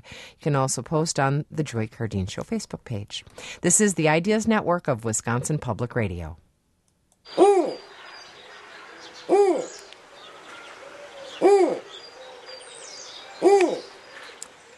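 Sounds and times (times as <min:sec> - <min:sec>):
speech: 0:00.0 - 0:06.4, 0:07.2 - 0:07.4
soft continuous outdoor hiss: 0:00.0 - 0:14.7
snowy owl hooting: 0:07.3 - 0:14.4
faint bird chatter: 0:07.3 - 0:14.7.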